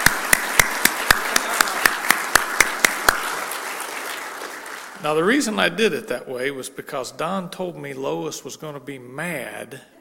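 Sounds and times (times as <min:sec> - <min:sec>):
group clapping in rhythm for a birthday: 0:00.0 - 0:05.0
speech: 0:05.0 - 0:09.9.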